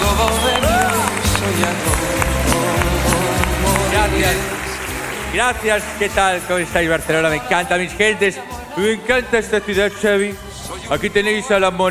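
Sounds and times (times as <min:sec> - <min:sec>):
audience applauding and cheering: 0:00.0 - 0:08.3
loud bass-heavy music: 0:00.0 - 0:11.8
speech: 0:05.4 - 0:11.8.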